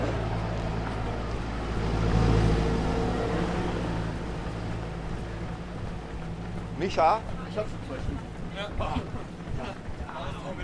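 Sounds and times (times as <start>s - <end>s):
engine rumble of a broom wagon support vehicle at a trail race: 0.0s - 10.6s
speech: 6.8s - 9.8s.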